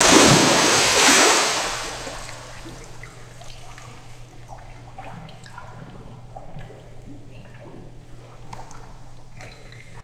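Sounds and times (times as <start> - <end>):
heavy swimming pool water splash: 0.0 - 3.8.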